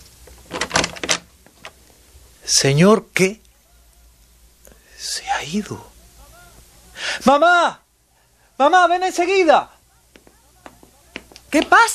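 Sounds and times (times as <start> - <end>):
door being opened with clicks and rattling scrape from handle and latch: 0.4 - 1.8
speech: 2.5 - 3.4, 5.4 - 5.9, 7.2 - 7.8, 8.6 - 9.7, 11.5 - 11.9
faint knocks: 10.1 - 11.7.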